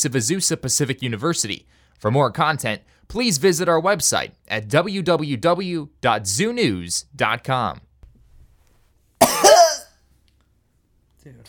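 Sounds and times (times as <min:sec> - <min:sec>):
speech: 0:00.0 - 0:07.9
loud rasping cough: 0:09.2 - 0:09.9.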